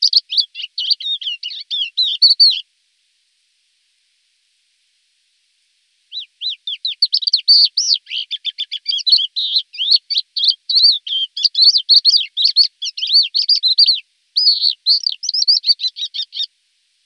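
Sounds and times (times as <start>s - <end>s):
Thekla's lark singing varied twittering and warbled notes: 0.0s - 2.6s, 6.1s - 16.5s.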